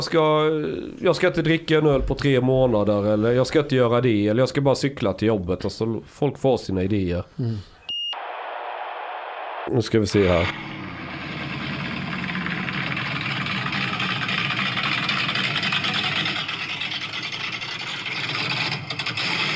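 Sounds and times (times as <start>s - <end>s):
speech: 0.0s - 7.7s, 9.7s - 10.8s
car engine idling: 10.5s - 19.4s.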